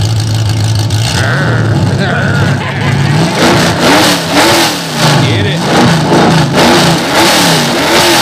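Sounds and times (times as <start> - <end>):
race car engine starting and revving: 0.0 - 8.2
person calling out: 1.2 - 3.6
laughter: 1.2 - 4.4.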